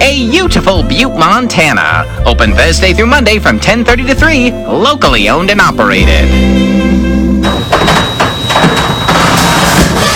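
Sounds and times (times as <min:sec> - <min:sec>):
speech: 0:00.2 - 0:06.9
noisy garage door opening: 0:07.4 - 0:10.1.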